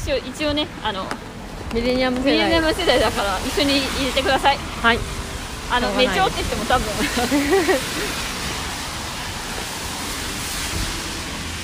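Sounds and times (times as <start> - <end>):
heavy rain falling outdoors: 0.0 - 11.6
speech: 0.1 - 8.3
laughter: 6.0 - 8.3.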